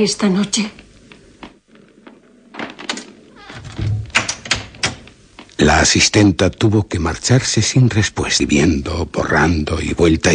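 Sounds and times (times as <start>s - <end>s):
speech: 0.0s - 0.8s, 5.6s - 10.3s
door swinging with low creaking thud: 2.5s - 5.2s
door latch and frame clicks and knocks: 2.9s - 5.1s.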